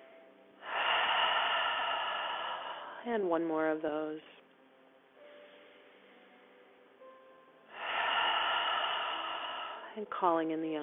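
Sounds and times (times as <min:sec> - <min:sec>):
person exhaling out through the mouth during a yoga class: 0:00.6 - 0:03.1, 0:07.7 - 0:10.0
speech: 0:03.0 - 0:04.4, 0:10.0 - 0:10.8.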